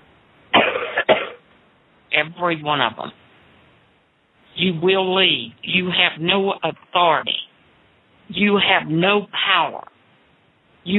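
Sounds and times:
heavy chesty coughs: 0.5s - 1.4s
speech: 2.2s - 3.2s, 4.6s - 7.4s, 8.3s - 9.9s.

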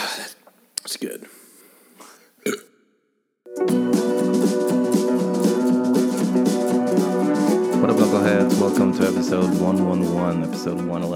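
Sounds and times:
speech: 0.9s - 1.4s, 8.5s - 11.1s
loud burp: 2.4s - 2.8s
music with a driving beat: 3.5s - 11.1s.

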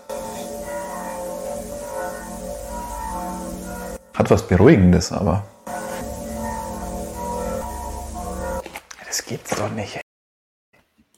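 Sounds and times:
church bells ringing: 0.0s - 8.7s
speech: 4.2s - 5.5s, 9.3s - 10.0s.

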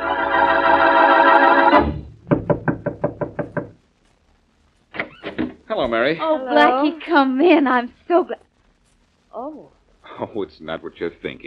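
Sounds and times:
sustained musical chord: 0.0s - 2.1s
sharp raps on a door: 1.8s - 3.8s
speech: 5.9s - 8.4s, 9.5s - 11.4s.

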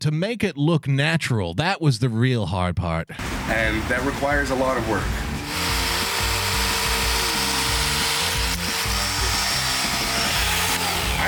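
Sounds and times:
speech: 0.0s - 5.3s
electric chainsaw running: 3.2s - 11.2s.

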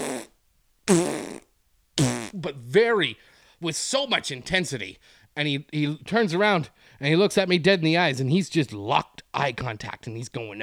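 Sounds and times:
voice imitating a fart with blown raspberries: 0.0s - 2.4s
speech: 2.3s - 10.6s.

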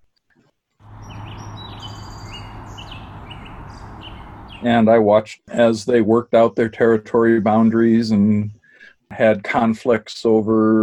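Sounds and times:
song sparrow singing: 0.8s - 4.7s
low hum of field noise: 0.8s - 4.8s
speech: 4.6s - 10.8s.

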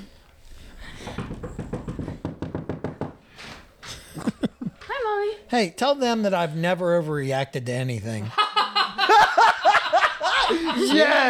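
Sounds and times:
faint noise: 0.0s - 11.2s
knocking on a wall: 1.0s - 3.3s
laughter: 3.9s - 4.9s, 8.3s - 11.2s
speech: 5.5s - 8.4s, 10.6s - 11.2s.

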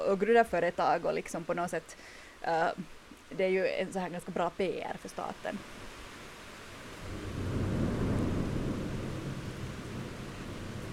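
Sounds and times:
speech: 0.0s - 5.8s
steady dense rain: 0.0s - 10.9s
deep rolling thunder rumble: 6.9s - 10.9s.

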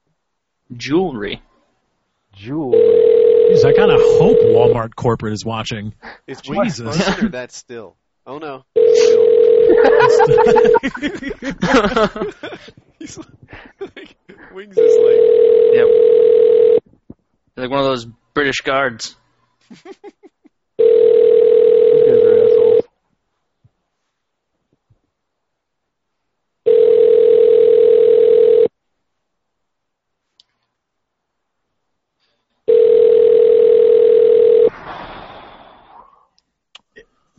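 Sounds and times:
speech: 0.7s - 1.5s, 2.4s - 16.6s, 17.6s - 20.2s
phone line ringing with electronic tones: 2.7s - 4.8s, 8.8s - 11.0s, 14.8s - 16.8s, 20.8s - 22.8s, 26.7s - 28.7s, 32.7s - 34.7s
laughter: 6.4s - 7.4s, 9.7s - 14.6s, 19.6s - 20.5s.

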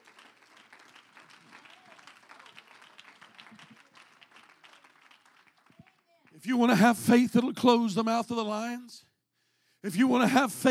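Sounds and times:
applause from a large gathering: 0.0s - 6.4s
speech: 6.4s - 9.1s, 9.8s - 10.6s.

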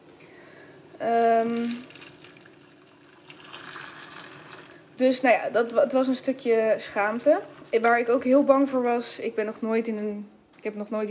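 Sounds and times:
speech: 1.0s - 1.9s, 5.0s - 11.0s
water pouring into a pan of eggs: 1.3s - 5.0s, 6.8s - 8.6s.

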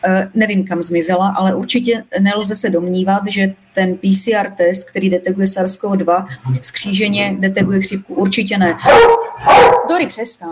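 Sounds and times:
speech: 0.0s - 10.5s
dog barking: 8.7s - 10.1s.

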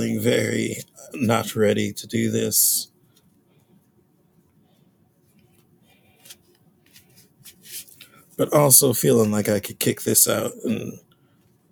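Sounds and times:
low voice murmuring: 0.0s - 2.8s, 10.3s - 11.0s
speech: 0.0s - 2.9s, 8.4s - 11.0s
deck of playing cards being shuffled: 6.2s - 8.1s.

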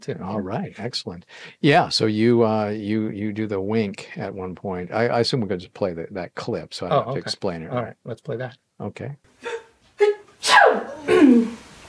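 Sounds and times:
speech: 0.0s - 9.3s
forceful sneezes with inhaled build-up: 9.4s - 11.6s.

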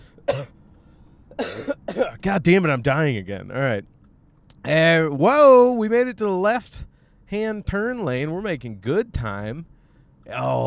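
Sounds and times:
harsh coughs: 0.2s - 0.5s, 1.3s - 2.2s
speech: 1.4s - 3.9s, 4.6s - 9.7s, 10.3s - 10.6s.

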